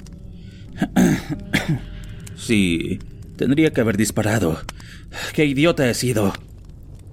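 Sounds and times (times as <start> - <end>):
speech: 0.7 - 6.5
person clearing throat: 0.8 - 2.0.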